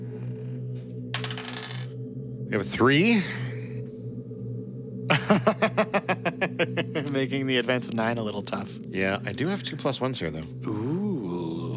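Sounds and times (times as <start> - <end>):
dice clattering across a tabletop: 1.1 - 1.9
steady low hum: 1.9 - 11.7
speech: 2.5 - 3.5, 5.2 - 5.7, 6.6 - 11.1
laughter: 5.1 - 7.6.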